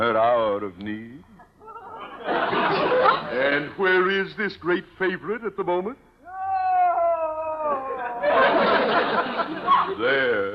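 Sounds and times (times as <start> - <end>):
speech: 0.0 - 1.3, 2.2 - 6.1, 9.1 - 10.5
laughter: 1.6 - 3.7, 7.6 - 10.5
woman wailing like a coyote howl: 6.2 - 8.5.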